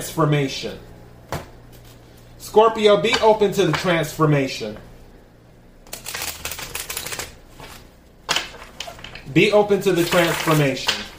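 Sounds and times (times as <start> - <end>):
speech: 0.0 - 0.9, 2.5 - 4.9, 9.3 - 11.1
tarot cards being split and shuffled: 5.9 - 9.3, 9.9 - 11.1.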